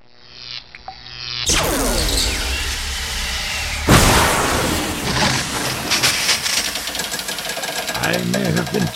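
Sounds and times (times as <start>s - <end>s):
laser blast cutting through steel: 1.4s - 8.0s
heavy impact: 1.5s - 8.0s
speech: 8.1s - 8.9s.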